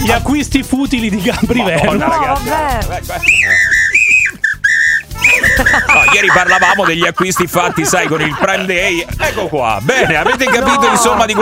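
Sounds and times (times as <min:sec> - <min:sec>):
speech: 0:00.1 - 0:03.8, 0:05.6 - 0:11.4
laughter: 0:01.1 - 0:04.3, 0:05.1 - 0:11.4
whistled jingle: 0:03.2 - 0:08.4.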